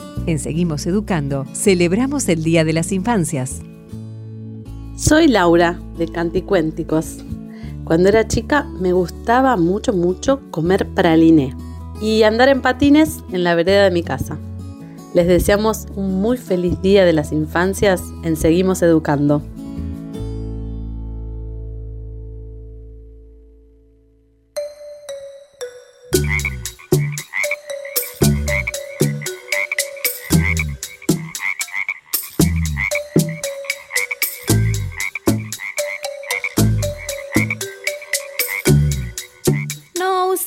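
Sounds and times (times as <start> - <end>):
speech: 0.3 - 3.7, 5.0 - 7.3, 7.9 - 14.5, 15.1 - 19.5
frog croaking: 26.1 - 40.1.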